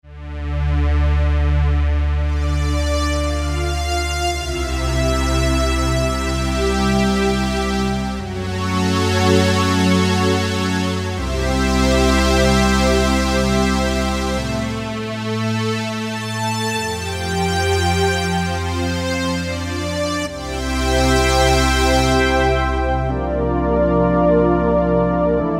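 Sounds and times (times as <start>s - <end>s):
Korg microKORG synthesizer octave strings: 1.5s - 25.5s.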